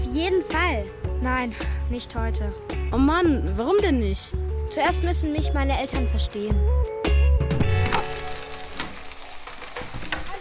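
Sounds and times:
speech: 0.2s - 7.1s
fried potatoes sizzling in a large pan in a home kitchen: 7.8s - 10.3s.

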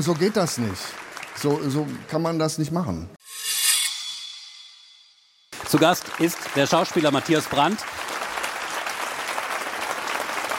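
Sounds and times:
live audience applauding: 0.0s - 2.4s, 5.5s - 10.5s
speech: 0.0s - 3.2s, 5.7s - 8.0s.

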